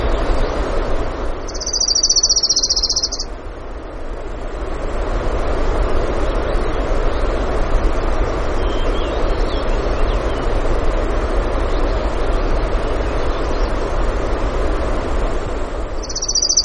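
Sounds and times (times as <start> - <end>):
loud steady rushing roar in Denali, Alaska: 0.0 - 16.6
orange-crowned warbler song trill in Denali, Alaska: 1.5 - 3.3, 16.0 - 16.6.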